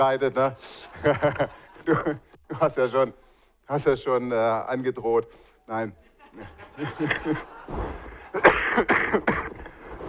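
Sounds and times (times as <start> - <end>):
speech: 0.0 - 9.6
laughter: 0.4 - 2.4, 6.0 - 10.0
harsh coughs: 8.4 - 10.0.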